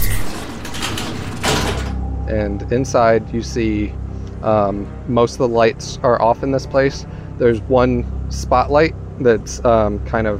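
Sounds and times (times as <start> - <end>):
door sliding open: 0.0 - 2.0
speech: 2.3 - 10.3.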